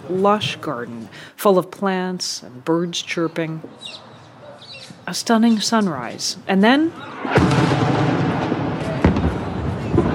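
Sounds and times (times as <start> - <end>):
speech: 0.1 - 4.1, 5.1 - 8.5
explosions: 7.0 - 10.1.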